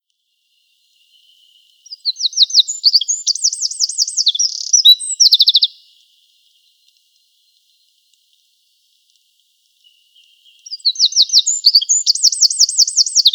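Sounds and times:
Eurasian wren Troglodytes troglodytes singing: 0.8s - 6.0s, 9.8s - 13.3s.

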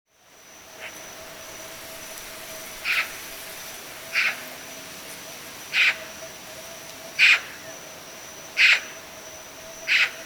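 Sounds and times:
Eurasian magpie giving harsh rasping calls: 2.8s - 3.1s, 4.1s - 4.4s, 5.7s - 6.0s, 7.2s - 7.6s, 8.6s - 8.9s, 9.9s - 10.2s.

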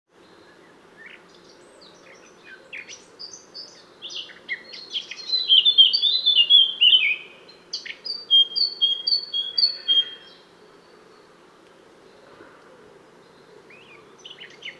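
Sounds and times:
Eurasian blackcap song: 1.0s - 10.4s, 13.7s - 14.7s.

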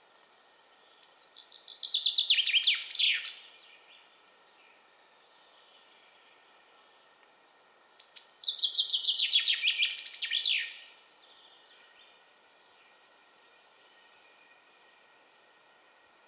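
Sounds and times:
Common chaffinch Fringilla coelebs song: 0.0s - 16.0s.

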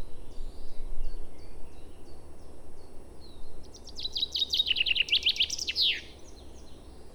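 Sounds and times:
common chaffinch Fringilla coelebs singing: 3.7s - 7.0s.

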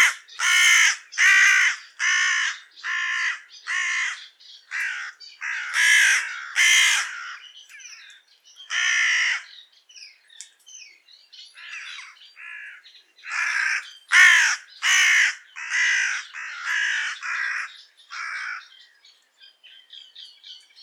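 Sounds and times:
carrion crow Corvus corone cawing: 0.0s - 7.5s, 8.7s - 9.6s, 11.6s - 18.8s.

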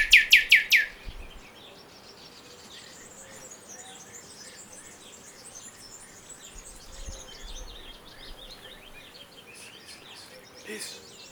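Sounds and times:
Common nightingale Luscinia megarhynchos song with descending whistled notes: 0.0s - 1.1s.

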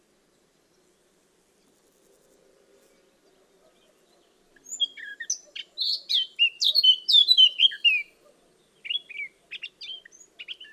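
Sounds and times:
Eurasian blackcap Sylvia atricapilla singing: 4.6s - 8.1s, 8.8s - 10.7s.

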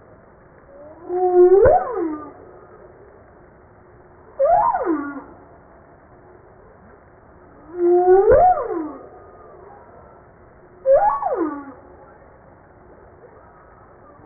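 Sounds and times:
quiet hiss: 0.0s - 14.2s
humpback whale song: 0.7s - 3.3s, 4.0s - 6.9s, 7.5s - 14.2s.

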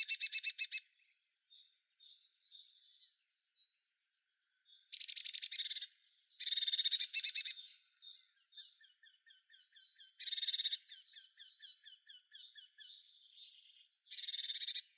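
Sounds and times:
Eurasian blue tit scratchy pulsed churr: 0.0s - 0.8s, 4.9s - 7.9s, 9.6s - 12.0s, 14.1s - 14.9s
Eurasian blue tit soft ticking notes: 0.0s - 14.9s.

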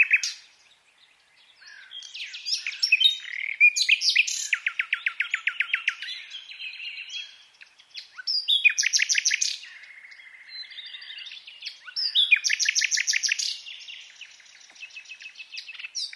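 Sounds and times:
Common nightingale song, Luscinia megarhynchos: 0.0s - 16.1s.

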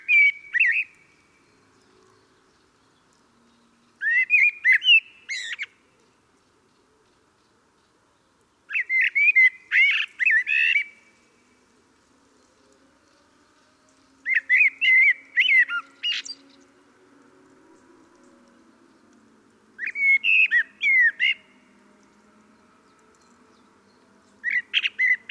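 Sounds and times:
common blackbird Turdus merula singing: 0.0s - 7.5s, 8.2s - 11.2s, 12.4s - 16.8s, 19.8s - 21.7s, 22.5s - 25.3s.

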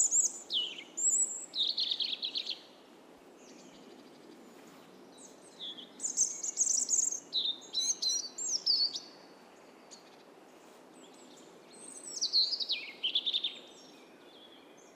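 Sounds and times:
European robin Erithacus rubecula singing: 0.0s - 2.8s, 5.2s - 10.2s, 11.0s - 14.9s.

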